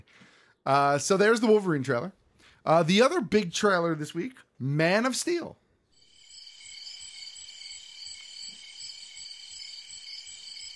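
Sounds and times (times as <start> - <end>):
speech: 0.6 - 5.6
crickets chirping: 5.9 - 10.7.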